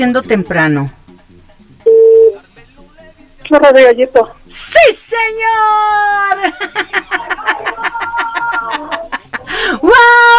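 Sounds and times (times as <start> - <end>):
speech: 0.0 - 1.0, 3.5 - 7.6
telephone tone as a phone call is placed on air: 1.9 - 2.4
laughter: 6.4 - 9.8.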